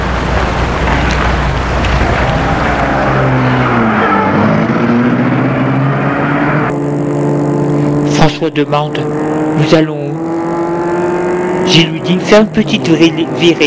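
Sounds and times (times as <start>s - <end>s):
car engine revving: 0.0s - 13.6s
speech: 8.4s - 10.0s, 11.7s - 13.6s.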